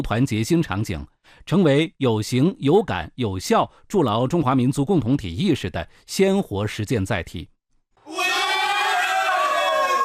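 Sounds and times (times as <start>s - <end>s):
speech: 0.0s - 7.5s
crowd cheering at a local football match: 8.0s - 10.0s.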